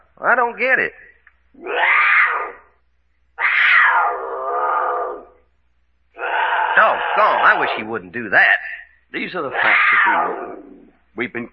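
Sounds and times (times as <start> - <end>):
speech: 0.2 - 2.5, 7.2 - 11.5
mountain lion screaming in harsh raspy wails: 1.6 - 2.8, 3.4 - 5.4, 6.2 - 7.9, 9.5 - 11.0.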